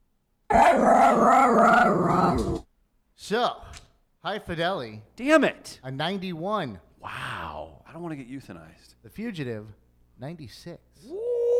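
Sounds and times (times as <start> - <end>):
dog growling: 0.5 - 2.6
speech: 3.3 - 7.3, 7.9 - 11.2.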